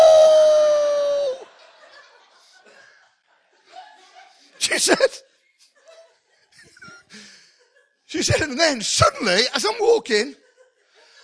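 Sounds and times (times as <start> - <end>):
person imitating a wolf howling: 0.0 - 1.4
laughter: 0.8 - 8.6, 10.2 - 11.2
speech: 4.8 - 5.3, 8.1 - 10.4.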